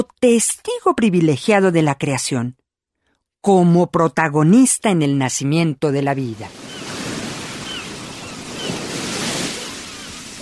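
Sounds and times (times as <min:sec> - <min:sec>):
speech: 0:00.0 - 0:02.6, 0:03.4 - 0:06.6
sea waves surging and breaking on a shore: 0:06.3 - 0:10.3.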